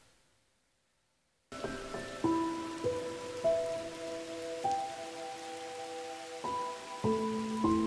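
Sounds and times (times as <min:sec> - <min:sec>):
rain falling on a cold night: 0:01.5 - 0:07.8
soft piano-like notes: 0:01.5 - 0:07.8.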